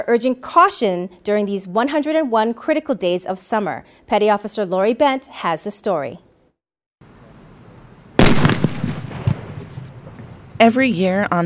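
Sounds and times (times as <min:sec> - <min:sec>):
speech: 0:00.0 - 0:06.3, 0:10.6 - 0:11.4
loud firework blast: 0:08.2 - 0:10.4.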